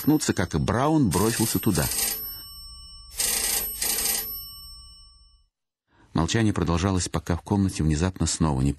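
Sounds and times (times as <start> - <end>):
speech: 0.0 - 2.2, 6.2 - 8.7
telephone ringing: 0.0 - 5.5.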